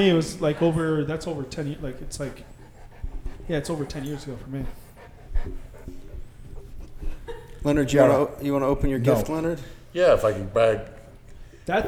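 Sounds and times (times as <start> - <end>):
speech: 0.0 - 2.6, 3.5 - 4.8, 5.4 - 6.0, 7.6 - 11.0, 11.7 - 11.8
dog panting: 0.0 - 10.5
laughter: 6.8 - 8.3.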